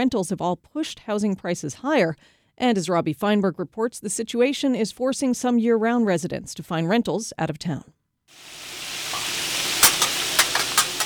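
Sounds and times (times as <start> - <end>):
speech: 0.0 - 8.6
crab cakes and sausage sizzling on a hot grill: 8.3 - 11.0.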